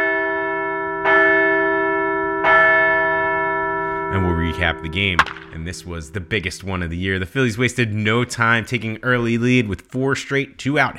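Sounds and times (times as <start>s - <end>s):
large bell ringing: 0.0s - 7.6s
speech: 4.1s - 10.9s.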